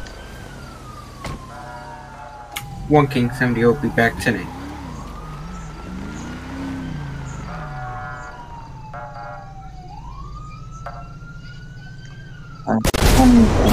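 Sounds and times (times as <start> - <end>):
emergency siren wailing: 0.0 - 12.9
speech: 2.9 - 4.6
loud blast like a gas explosion: 12.8 - 13.7.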